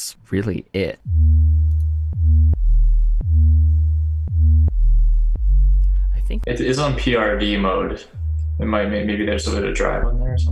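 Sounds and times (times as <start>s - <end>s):
speech: 0.0s - 1.3s, 6.3s - 10.5s
deep smooth sine-wave synth bass riff with downward pitch swoops: 1.0s - 10.5s.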